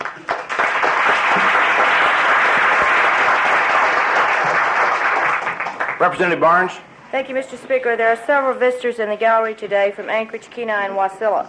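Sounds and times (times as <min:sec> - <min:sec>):
applause in a legislative chamber: 0:00.0 - 0:06.4
speech: 0:06.0 - 0:11.4.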